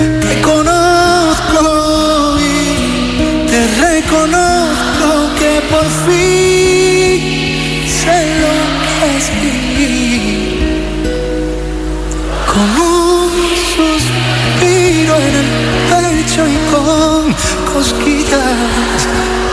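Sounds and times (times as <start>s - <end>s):
concert crowd singing along with the lead vocalist: 0.0s - 19.5s
live duet song by a Spanish artist with band: 0.0s - 19.5s.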